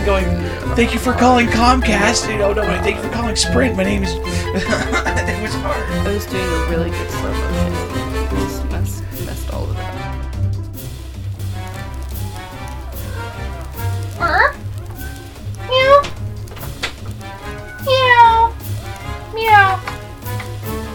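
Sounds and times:
laughter: 0.0 - 9.6
steady humming musical background: 0.0 - 20.9
speech: 0.1 - 9.0
cat meowing: 12.1 - 16.3, 17.4 - 19.9.

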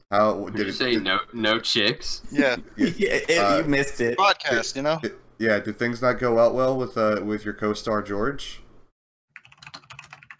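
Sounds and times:
speech: 0.1 - 8.6
typing on a computer keyboard: 9.3 - 10.3.

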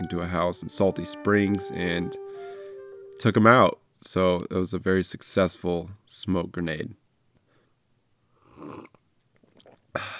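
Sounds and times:
speech: 0.1 - 2.6, 3.2 - 7.0
swallowing: 8.4 - 10.1
sipping a morning cup of coffee: 8.5 - 10.1
faint wet mouth clicks: 8.6 - 9.9.

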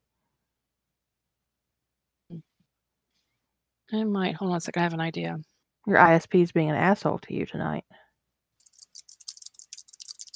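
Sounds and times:
speech: 3.9 - 8.0
keyboard typing: 8.6 - 10.3.

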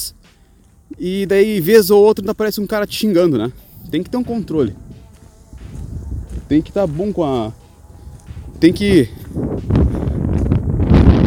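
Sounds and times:
speech: 0.9 - 4.8, 6.5 - 7.6, 8.6 - 10.0
wind buffeting the microphone: 3.6 - 11.2.

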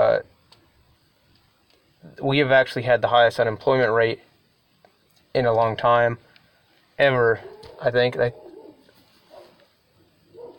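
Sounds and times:
speech: 2.1 - 4.3, 5.3 - 6.3, 7.0 - 8.4
dogs whining or barking: 7.4 - 9.6, 10.3 - 10.5.

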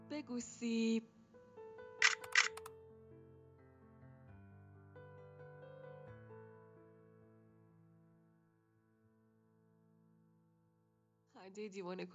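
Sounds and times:
speech: 0.1 - 1.2, 11.4 - 12.1
camera shutter clicks: 2.0 - 2.7.

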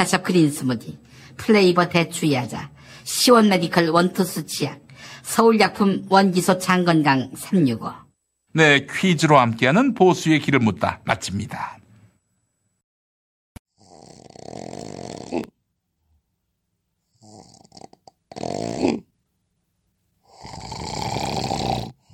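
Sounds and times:
speech: 0.0 - 11.8
person snoring loudly with mouth open: 13.7 - 15.6, 17.1 - 19.1, 20.2 - 22.1.

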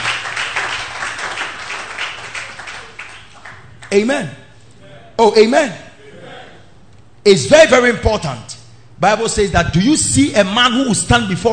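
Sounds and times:
crowd clapping their hands: 0.0 - 3.9
speech: 3.9 - 4.4, 5.2 - 5.8, 7.2 - 11.5.

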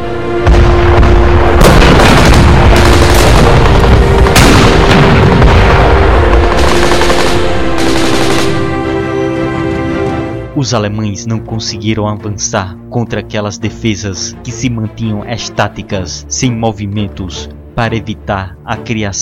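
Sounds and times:
tank and anti-tank cannon blasts: 0.0 - 9.2
explosions: 0.4 - 8.7
bursts of rapid gunfire: 1.6 - 8.7
speech: 10.6 - 19.2.

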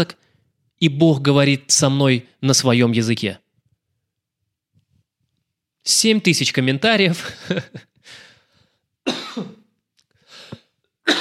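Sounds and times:
speech: 0.0 - 0.2, 0.8 - 3.4, 5.8 - 8.2, 9.0 - 9.5
person coughing in short harsh bursts: 9.1 - 9.7.

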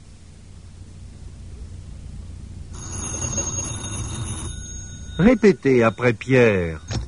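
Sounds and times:
low rumble: 0.0 - 7.0
telephone bell ringing: 2.7 - 7.0
speech: 5.2 - 6.8.

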